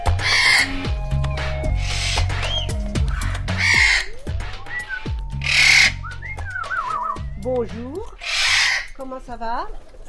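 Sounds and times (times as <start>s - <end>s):
Eclectus parrots squawking with whistled calls and chatter: 0.1s - 0.9s, 1.7s - 7.3s, 8.0s - 9.1s
speech: 9.3s - 9.9s.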